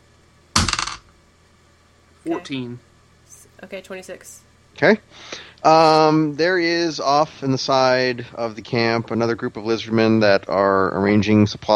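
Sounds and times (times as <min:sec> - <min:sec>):
dice tumbling across a hard table: 0:00.6 - 0:01.0
speech: 0:02.2 - 0:02.9, 0:03.6 - 0:11.7.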